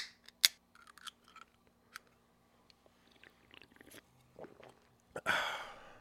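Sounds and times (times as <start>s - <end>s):
people sipping drinks: 2.8s - 5.0s.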